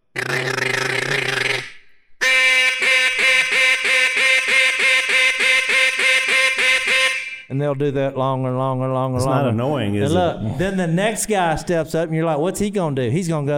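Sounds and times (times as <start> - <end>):
duck call blown to mimic mallard hen quacks: 0.1 - 7.5
speech: 7.6 - 13.5.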